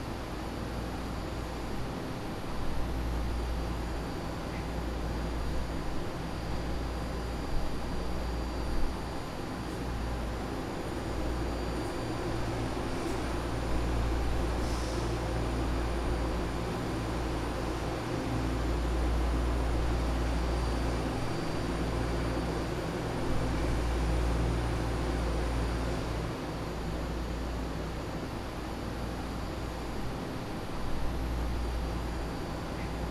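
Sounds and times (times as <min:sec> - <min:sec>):
BART Legacy Fleet train inverter: 0:00.0 - 0:33.0.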